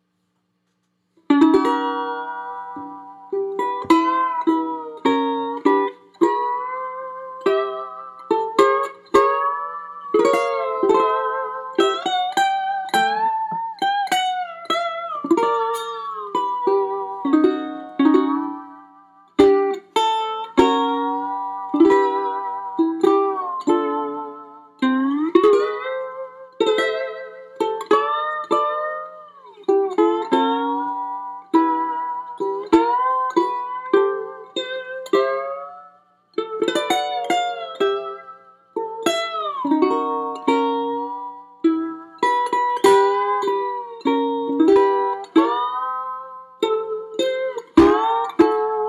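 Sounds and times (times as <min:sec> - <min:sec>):
white ukulele playing: 0:00.8 - 0:48.8.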